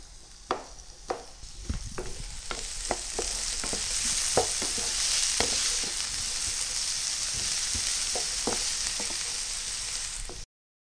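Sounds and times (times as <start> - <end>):
vegetables stir-frying and sizzling in a hot pan: 0.0 - 10.5
spatula scraping and tapping in a pan: 2.0 - 6.7, 7.3 - 9.5.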